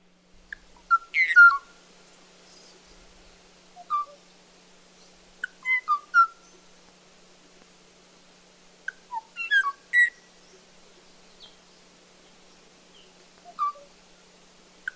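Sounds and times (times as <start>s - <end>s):
male Kauai o'o singing clear fluting whistled phrases: 0.9s - 1.7s, 3.8s - 4.2s, 5.5s - 6.5s, 9.1s - 10.3s, 13.5s - 13.9s.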